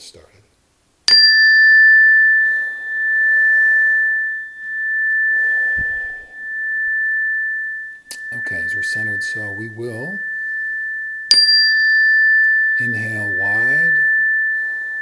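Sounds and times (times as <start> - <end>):
meditation chime ringing: 1.1 - 15.0
speech: 9.2 - 10.3, 12.8 - 14.0.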